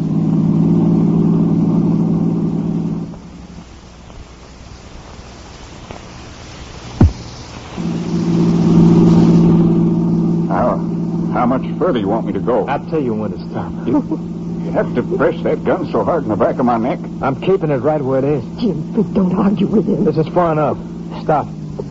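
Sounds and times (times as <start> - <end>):
car engine accelerating during a tense drive: 0.0 - 3.6, 7.0 - 21.9
brief sharp thump: 7.0 - 7.3
speech: 11.8 - 21.9
laughter: 12.7 - 20.8.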